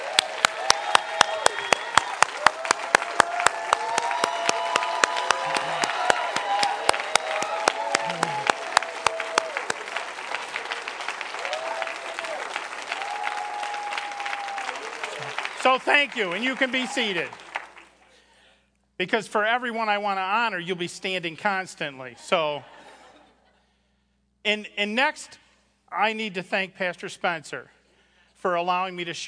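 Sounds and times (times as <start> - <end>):
scattered cheers: 0.0 - 17.5
large church audience applauding: 0.0 - 18.3
laughter: 5.3 - 6.3, 7.9 - 8.6, 22.2 - 23.6
speech: 15.8 - 17.4, 19.0 - 22.7, 24.4 - 27.8, 28.4 - 29.2.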